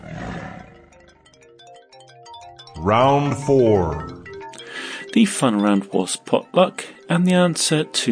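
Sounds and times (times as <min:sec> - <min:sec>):
tiger roaring and growling: 0:00.0 - 0:01.0
speech: 0:02.8 - 0:04.1, 0:05.2 - 0:08.1.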